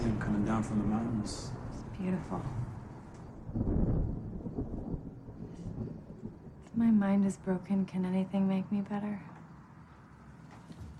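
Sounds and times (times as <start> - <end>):
thunder from a storm rumbling: 0.0 - 8.3
speech: 0.2 - 2.8, 6.8 - 9.3.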